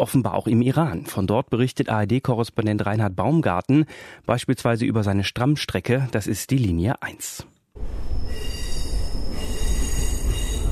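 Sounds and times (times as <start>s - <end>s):
speech: 0.0s - 8.5s
metro train metal wheels squealing on rails in a tunnel in Iran: 7.8s - 10.7s.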